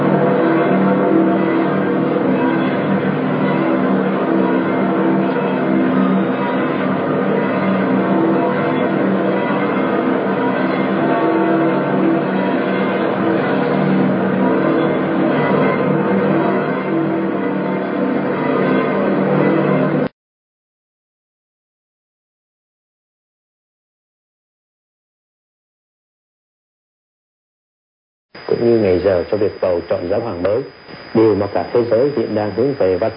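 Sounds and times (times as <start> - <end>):
church bells pealing in a public square: 0.0 - 20.1, 28.5 - 30.6, 31.2 - 33.1
speech: 28.6 - 33.1.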